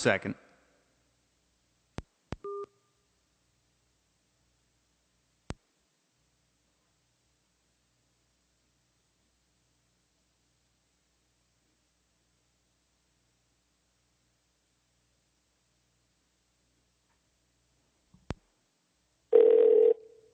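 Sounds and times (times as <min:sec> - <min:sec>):
speech: 0:00.0 - 0:00.4
two-tone telephone beep as a call is hung up: 0:02.4 - 0:02.7, 0:19.3 - 0:20.1
loud phone ringing as a call is placed: 0:19.3 - 0:20.3.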